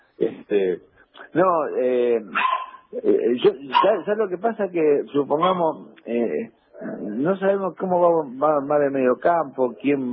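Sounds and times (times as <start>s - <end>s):
speech: 0.5s - 10.1s
dog whining yelps: 2.3s - 2.9s, 3.7s - 4.0s
dog barking: 2.3s - 3.0s, 3.7s - 4.1s, 5.4s - 5.8s.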